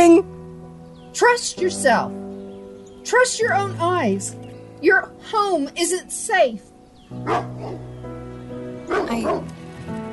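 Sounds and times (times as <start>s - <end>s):
speech: 1.2s - 2.2s, 3.0s - 7.9s, 8.9s - 9.6s
dogs barking: 7.1s - 7.9s, 8.8s - 9.5s.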